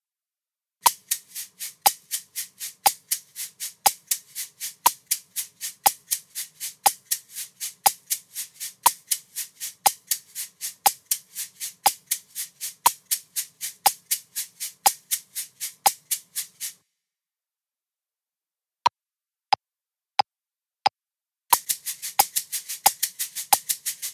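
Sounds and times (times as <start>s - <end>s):
shakers playing sixteenth notes with accents: 0.8s - 16.8s, 21.5s - 24.1s.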